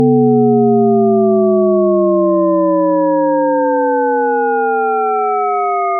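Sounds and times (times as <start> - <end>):
rising tone: 0.0 - 5.9.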